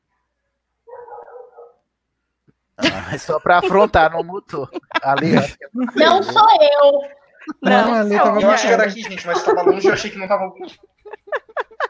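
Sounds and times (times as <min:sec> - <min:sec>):
dog barking over a call microphone: 0:00.9 - 0:01.8
laughter: 0:02.8 - 0:06.6, 0:07.4 - 0:11.8
speech: 0:02.8 - 0:11.0.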